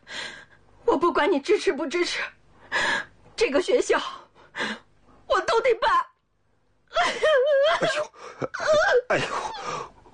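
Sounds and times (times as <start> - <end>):
speech: 1.2 - 4.8, 5.6 - 6.0, 7.8 - 9.9
woman crying with wails and sobs in a domestic quarrel: 6.9 - 10.1.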